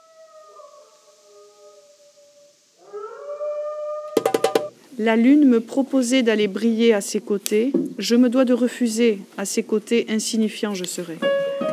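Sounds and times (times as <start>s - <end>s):
wolves howling in chorus: 0.0s - 4.4s
speech: 5.0s - 11.4s.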